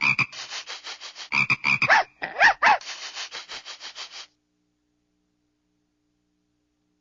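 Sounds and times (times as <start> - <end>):
frog croaking: 0.0 - 0.3, 1.3 - 2.8.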